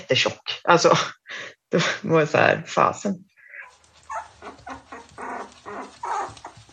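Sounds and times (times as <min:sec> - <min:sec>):
speech: 0:00.1 - 0:03.3
sled dog and bird dog cross puppies whimpering and yipping in an apartment: 0:03.5 - 0:06.7.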